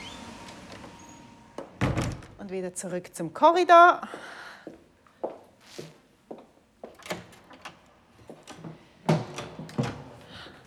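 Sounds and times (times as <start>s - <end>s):
door closing click-thud: 0.0s - 2.4s
speech: 2.5s - 4.8s.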